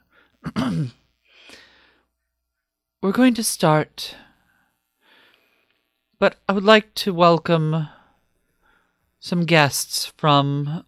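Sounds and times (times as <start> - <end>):
woman clearing her throat: 0.4 - 1.0
speech: 0.6 - 1.0, 3.0 - 4.2, 6.2 - 8.0, 9.2 - 10.8.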